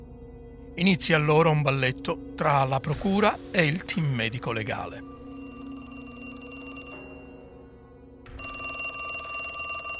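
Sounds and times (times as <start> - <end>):
speech: 0.8 - 5.2
telephone ringing with a metallic bell tone: 5.0 - 7.7, 8.3 - 9.9.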